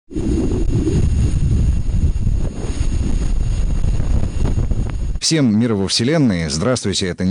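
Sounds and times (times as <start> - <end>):
wind roar on the planet Venus: 0.1 - 5.2
speech: 5.2 - 7.2.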